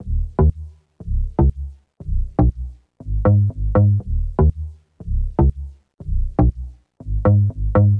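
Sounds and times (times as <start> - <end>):
bass in dancefloor pop: 0.0 - 7.9.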